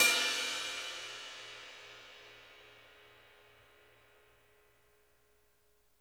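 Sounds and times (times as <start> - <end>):
bell: 0.0 - 1.7
drum kits: 0.0 - 1.9.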